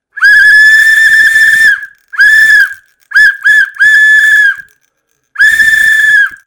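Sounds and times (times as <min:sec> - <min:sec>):
whistle blowing: 0:00.1 - 0:04.8, 0:05.4 - 0:06.4.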